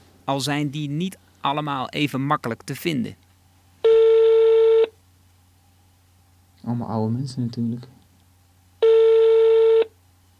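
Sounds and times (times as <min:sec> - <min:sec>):
faint low hum: 0:00.0 - 0:10.3
speech: 0:00.3 - 0:03.2, 0:06.6 - 0:08.0
phone line ringback tone: 0:03.8 - 0:04.9, 0:08.8 - 0:09.9.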